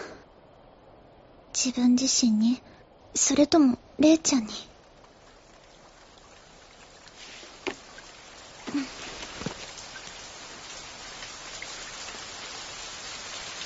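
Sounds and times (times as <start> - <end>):
speech: 1.6 - 4.7
steady rain pouring: 4.1 - 13.6
louder drips or taps: 4.8 - 12.4.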